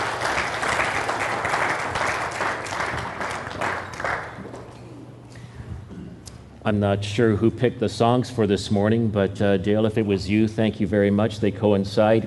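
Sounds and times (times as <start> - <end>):
audience applauding the worship team: 0.0 - 4.7
speech: 6.6 - 12.2.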